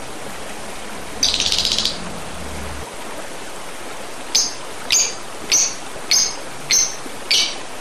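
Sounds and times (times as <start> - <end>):
constant hiss: 0.0 - 7.8
Oriental magpie-robin calling: 1.2 - 2.1, 4.3 - 7.8.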